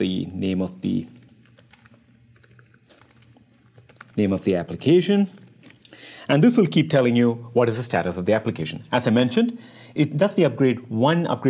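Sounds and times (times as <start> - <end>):
speech: 0.0 - 1.2, 4.2 - 5.4, 6.3 - 11.4
typing on a computer keyboard: 0.8 - 5.6.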